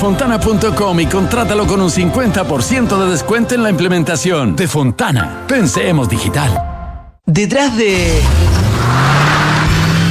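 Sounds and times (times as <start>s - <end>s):
speech: 0.0s - 6.7s, 7.3s - 8.6s
car engine revving: 7.9s - 10.0s.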